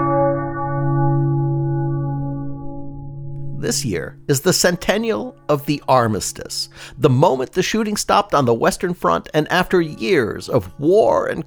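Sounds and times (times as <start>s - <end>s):
single deep church bell tolling: 0.0s - 6.9s
speech: 3.6s - 11.4s.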